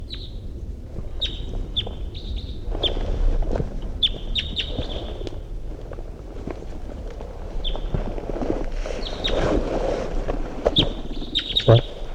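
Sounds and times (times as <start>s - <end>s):
wild bird chirping in flight: 0.0s - 0.4s, 1.2s - 3.0s, 4.0s - 5.2s, 10.8s - 12.1s
low rumble: 0.0s - 12.1s
wind noise: 0.0s - 12.1s.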